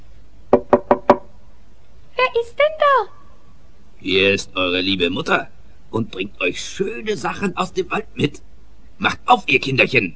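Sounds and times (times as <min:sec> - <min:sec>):
knocking on a wooden door: 0:00.5 - 0:01.3
speech: 0:02.3 - 0:03.2, 0:04.0 - 0:10.1.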